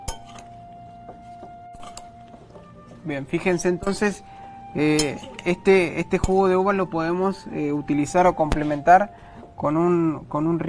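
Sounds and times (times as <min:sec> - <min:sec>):
utensil clinking against a bowl while mixing apples: 0:00.0 - 0:00.6, 0:01.7 - 0:03.0, 0:03.8 - 0:04.2, 0:04.8 - 0:06.6
speech: 0:03.0 - 0:10.6.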